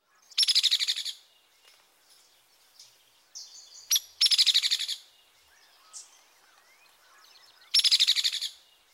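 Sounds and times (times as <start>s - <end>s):
hairy woodpecker rattle call: 0.3s - 1.2s, 3.9s - 5.0s, 6.6s - 8.6s.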